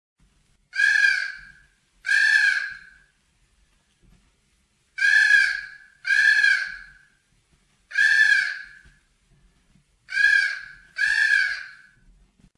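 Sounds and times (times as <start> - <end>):
birds: 0.7 - 3.1, 5.0 - 7.2, 7.9 - 9.0, 10.1 - 12.0.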